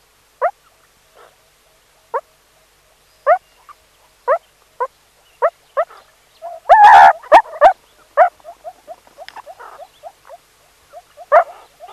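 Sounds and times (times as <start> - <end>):
meerkat chirps: 5.4 - 11.9.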